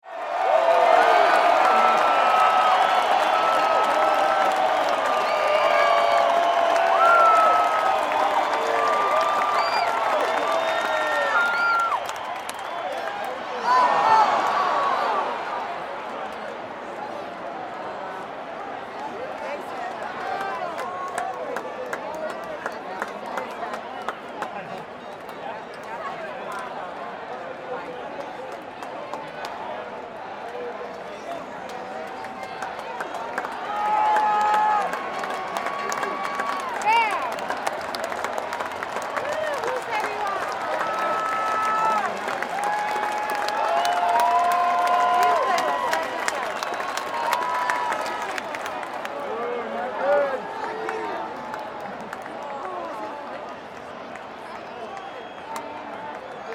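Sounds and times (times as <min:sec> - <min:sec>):
baseball crowd booing: 0:00.0 - 0:16.1, 0:33.4 - 0:53.4
baseball game crowd walla: 0:00.0 - 0:56.5.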